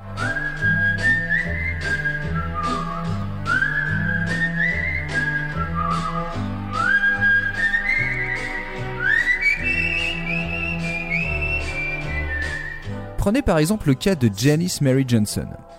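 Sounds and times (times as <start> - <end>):
backing track with bass and a regular beat: 0.0 - 13.0
whistled pop melody: 0.0 - 14.6
speech: 13.2 - 15.7.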